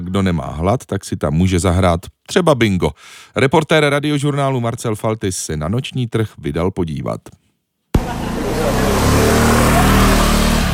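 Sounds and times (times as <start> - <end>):
speech: 0.1 - 7.4
car engines droning and revving in busy street traffic in Taipei: 8.0 - 10.7.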